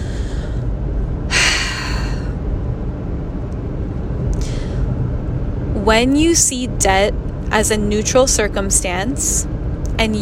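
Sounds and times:
person breathing: 0.0s - 0.7s, 1.3s - 2.3s, 4.4s - 4.9s
low rumble: 0.0s - 10.2s
speech: 5.9s - 10.2s.

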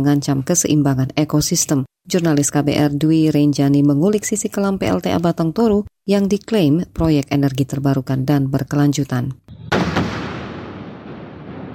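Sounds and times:
speech: 0.0s - 9.5s
explosive blast for underground hydropower tunnel construction in North Sumatra: 9.5s - 11.7s
second thud from tunnel blasting: 9.5s - 11.7s.

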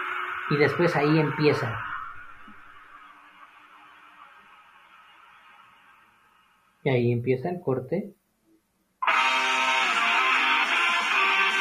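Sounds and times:
brassy wail of trumpets or saxophone opening a song: 0.0s - 3.0s, 9.0s - 11.5s
speech: 0.5s - 1.9s, 6.8s - 8.2s.

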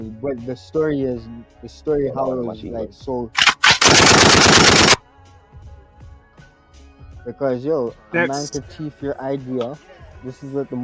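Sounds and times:
speech: 0.0s - 4.9s, 7.2s - 10.8s
rapid gunfire: 3.4s - 5.0s.

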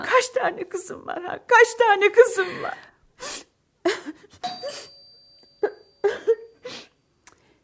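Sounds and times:
speech: 0.0s - 3.3s
mother sobbing: 2.3s - 5.0s, 5.6s - 7.0s.

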